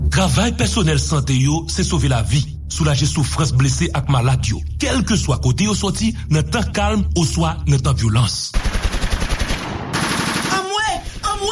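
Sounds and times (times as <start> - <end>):
speech: 0.2 - 8.6
loud automatic gunfire from all sides: 8.6 - 11.2.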